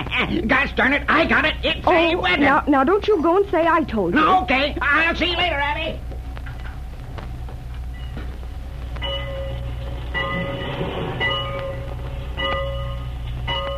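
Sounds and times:
train idling at a station with a low rumble: 0.0 - 13.7
speech: 0.2 - 6.1
short high tonal bursts: 7.8 - 13.7.

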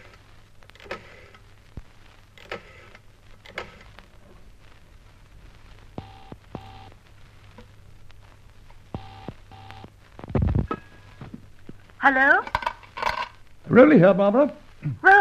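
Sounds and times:
steady electronic tones of public telephone: 6.0 - 7.0, 8.9 - 10.6
speech: 12.0 - 12.6, 13.7 - 15.0.

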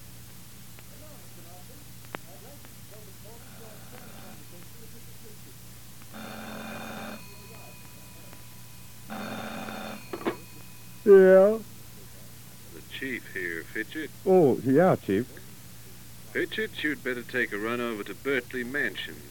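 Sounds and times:
steady low hum: 0.0 - 19.2
faint murmuring: 0.9 - 19.2
telephone bell ringing at night: 3.6 - 4.4, 6.1 - 11.7
speech: 11.1 - 11.6, 13.4 - 15.4, 16.4 - 19.2.

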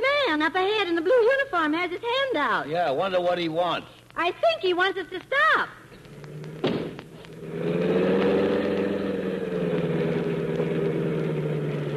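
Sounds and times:
speech: 0.4 - 5.8
car engine with a suspected motor fault droning: 6.0 - 11.9
sharp thud: 6.6 - 7.1.

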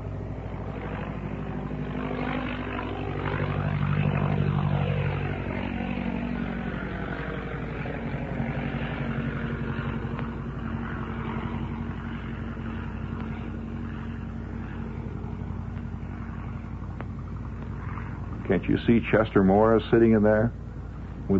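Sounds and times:
old propeller plane with OX-5 piston engine flying across a field: 0.0 - 21.3
speech: 18.6 - 20.6.

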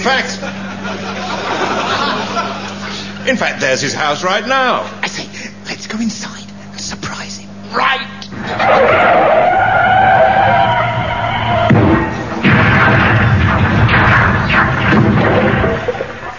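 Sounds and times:
speech: 0.0 - 1.2, 3.2 - 9.4
car engine noise: 0.0 - 6.8, 7.4 - 16.3
laughter: 0.1 - 3.4
car tyres screeching in a long skid: 8.3 - 16.3.

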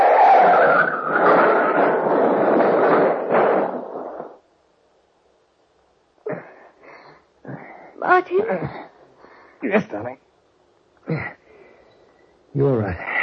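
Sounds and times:
car skidding and grinding off the road into a ditch and turning over: 0.0 - 4.4
speech: 8.3 - 8.8, 9.7 - 10.2, 12.6 - 13.1.

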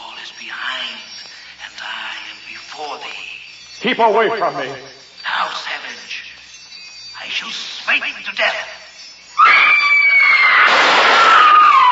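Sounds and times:
speech: 3.8 - 5.0, 7.4 - 8.7
high-pitched scream: 9.4 - 11.9.

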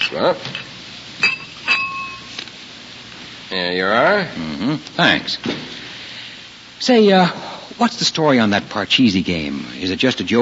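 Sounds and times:
speech: 0.1 - 0.7, 3.5 - 5.8, 6.8 - 10.4
glass clinking as a glass of sherry is served: 1.2 - 2.3.

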